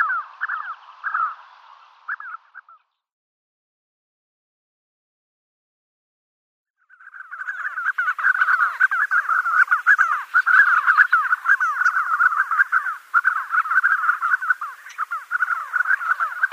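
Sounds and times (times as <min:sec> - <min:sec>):
spotted sandgrouse throaty calls: 0:00.0 - 0:01.5, 0:02.1 - 0:02.8, 0:06.9 - 0:16.5.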